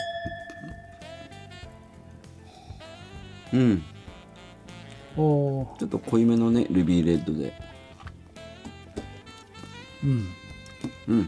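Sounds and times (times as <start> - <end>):
glasses of red wine clinking together in a toast: 0.0 - 1.7
speech: 3.5 - 3.9, 5.2 - 7.7, 10.0 - 10.4, 11.1 - 11.2.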